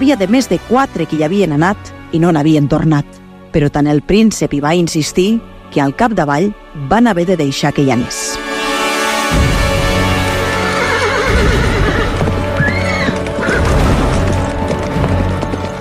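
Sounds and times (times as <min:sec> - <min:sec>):
speech: 0:00.0 - 0:08.5
horse hooves clip-clopping in a trot: 0:09.3 - 0:15.7
horse neighing: 0:10.4 - 0:14.3.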